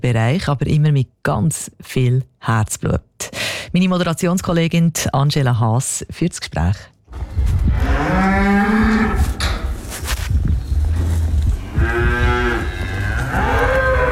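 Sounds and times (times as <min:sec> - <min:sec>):
speech: 0:00.0 - 0:08.8
steady low rumble: 0:07.1 - 0:13.4
cows mooing in a farm barn, brought in from pasture: 0:07.7 - 0:09.4, 0:11.5 - 0:14.1.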